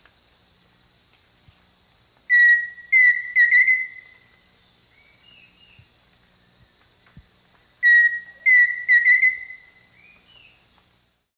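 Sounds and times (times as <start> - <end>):
high insect drone: 0.0 - 11.3
Pheasant cuckoo Dromococcyx phasianellus whistling song: 2.3 - 4.3, 7.8 - 10.5.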